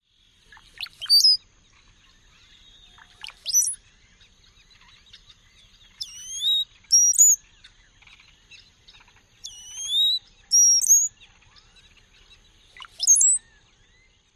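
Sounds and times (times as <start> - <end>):
Bronzed Cowbird gurgling song: 0.4 - 1.4, 2.8 - 3.8, 5.5 - 7.4, 9.0 - 14.0
Bronzed Cowbird whistle call: 0.8 - 1.4, 3.2 - 3.8, 6.0 - 7.4, 9.4 - 11.1, 12.8 - 13.4.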